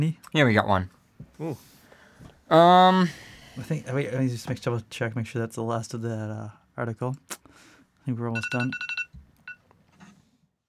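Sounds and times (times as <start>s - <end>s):
speech: 0.0s - 1.7s, 2.5s - 8.9s
timer beeping in short electronic tones: 8.4s - 9.6s.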